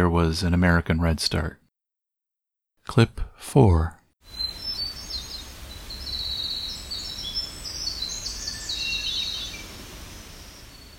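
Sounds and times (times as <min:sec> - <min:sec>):
speech: 0:00.0 - 0:01.6, 0:02.9 - 0:04.4
clear bird song phrases in the style of a hermit thrush: 0:02.9 - 0:10.9
high rapid trilling bird song like a winter wren: 0:04.3 - 0:10.9.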